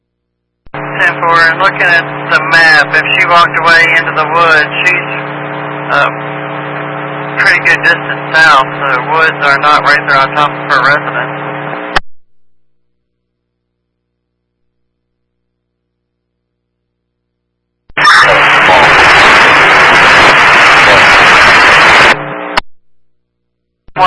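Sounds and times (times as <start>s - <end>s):
harsh radio static: 0.7s - 12.0s, 17.9s - 22.6s
speech: 1.0s - 5.0s, 5.9s - 6.3s, 7.4s - 11.4s.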